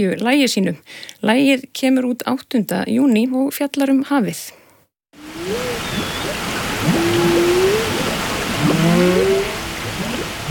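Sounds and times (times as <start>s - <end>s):
speech: 0.0s - 4.6s
steady loud hiss of underwater water noise: 5.2s - 10.4s
whales calling underwater in a bay recorded by a hydrophone: 5.2s - 10.4s.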